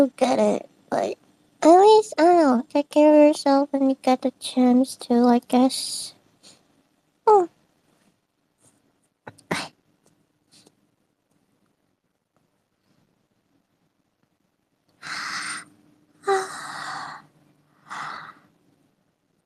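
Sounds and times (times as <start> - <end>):
speech: 0.0 - 6.2, 7.3 - 7.5
sighing breaths: 15.0 - 18.5
person yawning: 16.2 - 17.2.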